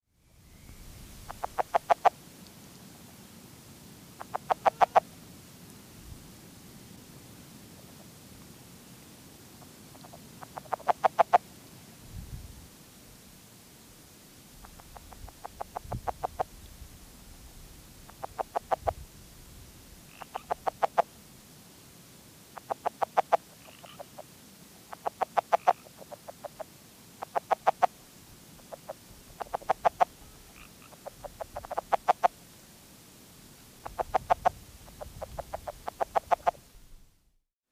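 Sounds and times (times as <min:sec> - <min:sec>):
red-legged frog calling: 0:01.2 - 0:02.2, 0:04.2 - 0:05.1, 0:09.6 - 0:11.5, 0:14.6 - 0:16.6, 0:18.0 - 0:19.0, 0:20.1 - 0:21.1, 0:22.5 - 0:28.0, 0:28.6 - 0:32.4, 0:33.8 - 0:36.6.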